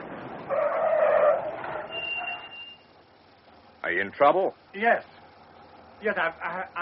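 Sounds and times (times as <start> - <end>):
car tires squealing in a skid while braking to a stop: 0.4 - 2.8
speech: 4.0 - 5.1, 6.0 - 6.8.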